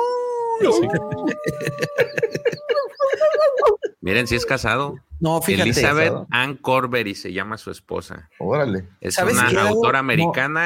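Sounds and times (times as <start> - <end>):
person imitating a wolf howl: 0.0 - 4.5
several people laughing: 0.6 - 4.0
speech: 0.6 - 10.6.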